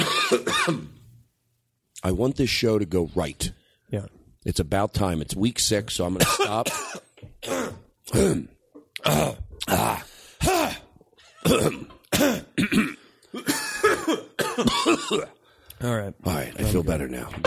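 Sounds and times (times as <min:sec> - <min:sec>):
people coughing and clearing throats: 0:00.0 - 0:01.0, 0:06.2 - 0:09.4, 0:11.4 - 0:15.4
speech: 0:00.3 - 0:01.0, 0:02.0 - 0:10.8, 0:11.4 - 0:17.4.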